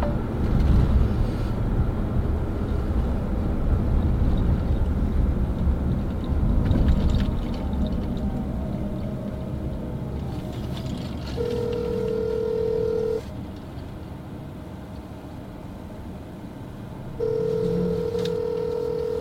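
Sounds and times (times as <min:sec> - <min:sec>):
road rumble inside a moving car: 0:00.0 - 0:19.1
phone ringback tone: 0:11.4 - 0:13.2, 0:17.2 - 0:19.1.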